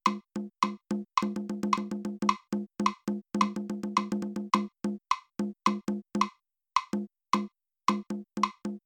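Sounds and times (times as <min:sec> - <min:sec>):
drum playing with bad rhythmic accuracy: 0:00.0 - 0:06.3, 0:07.0 - 0:08.8.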